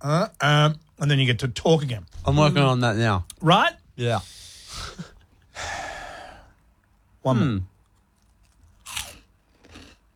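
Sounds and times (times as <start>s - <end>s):
speech: 0.0s - 5.7s, 7.2s - 7.7s
someone biting into cheese chips: 8.2s - 10.0s.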